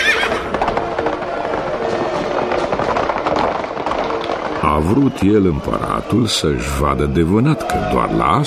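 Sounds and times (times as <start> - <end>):
horse whinnying: 0.0 - 0.6
horse hooves clattering on hard ground: 0.0 - 8.3
speech: 4.8 - 8.4.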